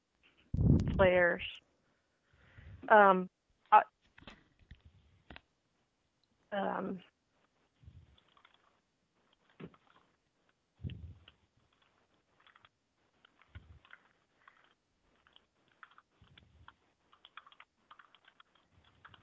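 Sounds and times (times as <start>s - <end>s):
speech: 1.0s - 1.6s, 2.9s - 3.9s, 6.5s - 7.1s
soft keyboard clicks typing into a chat during an online meeting: 8.2s - 10.1s, 10.8s - 19.2s.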